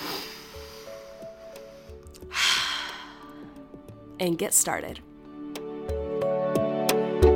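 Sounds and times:
deep breath: 0.0 - 3.8
faint tonal backdrop: 0.0 - 7.2
speech: 4.2 - 5.1.

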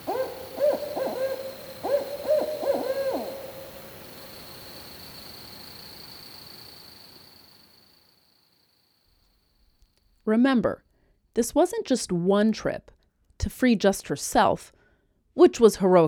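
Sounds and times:
barred owl hooting in Maryland: 0.0 - 7.1
steady hiss: 0.0 - 9.8
speech: 10.3 - 10.8, 11.4 - 14.8, 15.4 - 16.0.

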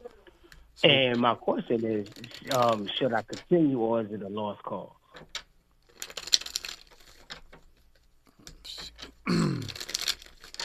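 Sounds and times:
speech: 0.8 - 5.3
deck of cards being shuffled: 1.7 - 3.5, 5.8 - 7.6, 8.5 - 10.6.

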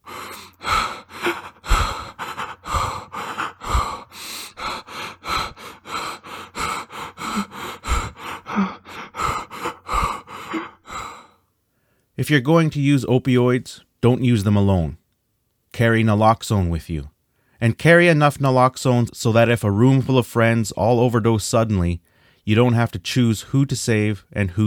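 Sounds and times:
person gasping: 0.0 - 12.1, 22.1 - 22.4
steady regular breathing: 0.0 - 12.2, 17.2 - 17.6, 22.0 - 22.5
speech: 12.3 - 15.0, 15.8 - 24.6.

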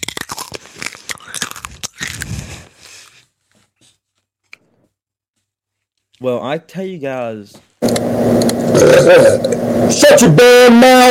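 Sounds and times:
someone chewing hard crispy food: 0.0 - 3.4
speech: 6.2 - 11.1.

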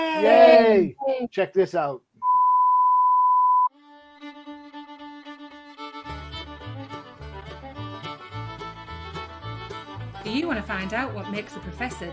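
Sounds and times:
speech: 0.2 - 2.1, 10.3 - 12.1
steady electronic beep: 2.2 - 3.7
busy quick-picked banjo music: 5.9 - 12.1.

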